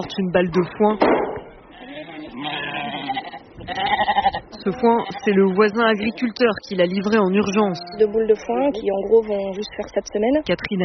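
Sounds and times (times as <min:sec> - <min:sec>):
speech: 0:00.0 - 0:01.3, 0:03.6 - 0:10.8
flock of sheep and lambs bleating: 0:01.7 - 0:06.1.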